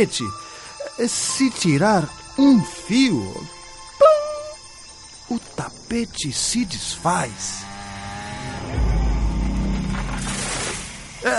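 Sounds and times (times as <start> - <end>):
speech: 0.0 - 3.6, 5.3 - 7.7
chainsaw engine running while cutting trees: 4.8 - 11.2.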